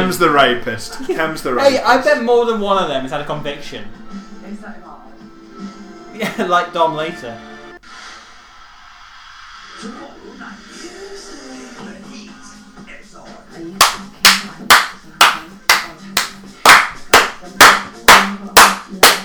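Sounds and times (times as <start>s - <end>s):
speech: 0.0s - 4.8s, 6.2s - 7.5s
loud sharp hand claps: 13.8s - 19.2s.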